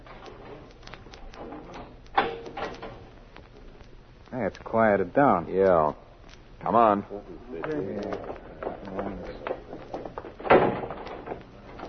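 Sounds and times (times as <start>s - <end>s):
low hum: 0.0s - 11.8s
speech: 4.3s - 6.0s, 6.6s - 8.5s
heavy steel door sharp clunk: 10.4s - 11.8s.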